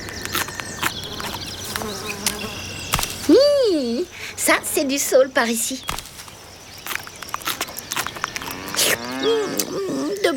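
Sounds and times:
rustling: 0.1 - 4.8, 5.4 - 9.7
speech: 3.3 - 6.0
cows mooing: 8.4 - 10.2.

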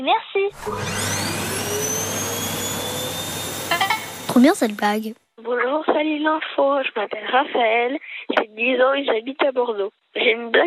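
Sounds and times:
speech: 0.0 - 1.3, 3.7 - 10.6
vacuum cleaner running: 0.5 - 5.0.

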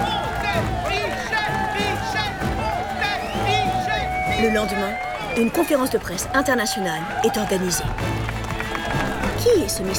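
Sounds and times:
frenzied crowd whistling: 0.0 - 7.8
frenzied crowd shouting and cheering: 0.0 - 9.9
speech: 0.6 - 0.8, 4.4 - 8.2, 9.4 - 9.9.

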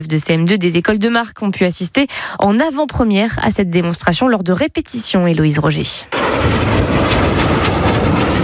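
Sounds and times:
speech: 0.0 - 7.1
aerobatic airplanes diving and passing overhead at full speed: 6.1 - 8.4.

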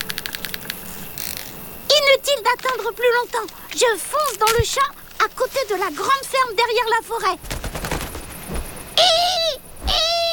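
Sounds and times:
speech: 2.6 - 7.6
barn owl calling: 7.4 - 10.3.

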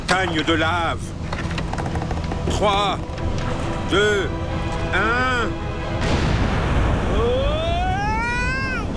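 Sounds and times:
speech: 0.1 - 1.2, 2.5 - 5.7
loud explosion swelling into heavy roaring rumble: 6.0 - 8.8.

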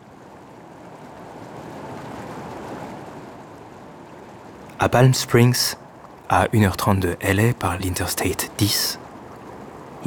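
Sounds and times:
waterfall cascading: 4.6 - 9.0
speech: 4.8 - 9.0.

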